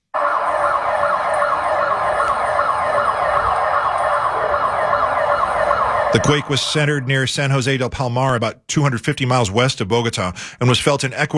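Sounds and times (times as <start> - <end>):
emergency sirens wailing in a residential area of Bogota after an earthquake: 0.0 - 7.8
speech: 6.1 - 11.3.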